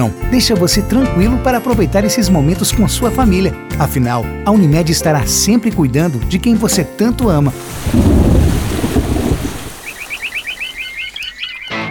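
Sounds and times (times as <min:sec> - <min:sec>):
speech: 0:00.0 - 0:08.4
loud rumble of thunder: 0:07.6 - 0:10.2
steady rain: 0:07.6 - 0:11.2.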